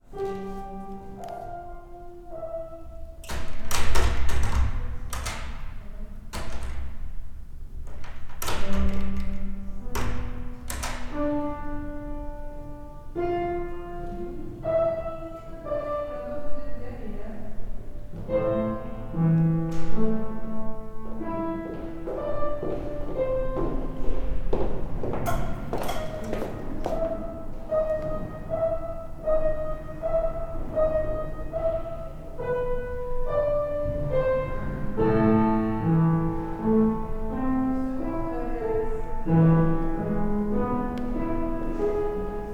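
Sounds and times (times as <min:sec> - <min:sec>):
piano playing in a piano lesson: 0:00.0 - 0:42.5.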